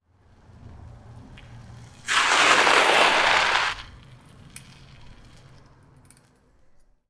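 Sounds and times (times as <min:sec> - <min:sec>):
bicycle skidding on gravel: 0:02.0 - 0:04.0.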